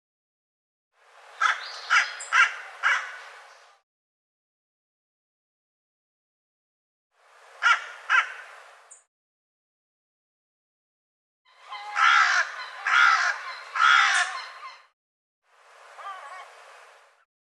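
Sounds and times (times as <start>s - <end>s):
bird cawing: 1.4s - 3.6s, 7.6s - 8.6s, 11.5s - 14.9s.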